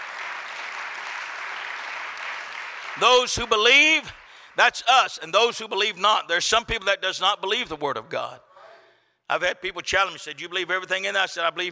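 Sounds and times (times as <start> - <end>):
church congregation clapping hands during a worship service: 0.0 - 5.9
speech: 3.0 - 8.5, 9.3 - 11.7.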